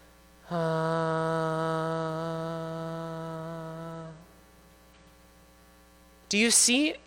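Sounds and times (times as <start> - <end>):
person humming one long steady note while exhaling: 0.4 - 4.4.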